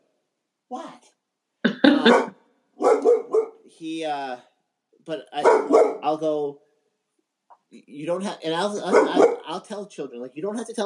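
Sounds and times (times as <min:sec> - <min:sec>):
speech: 0:00.7 - 0:01.2, 0:02.0 - 0:02.4, 0:03.8 - 0:06.6, 0:07.7 - 0:10.8
dog barking: 0:02.0 - 0:03.7, 0:05.4 - 0:06.2, 0:08.8 - 0:09.6.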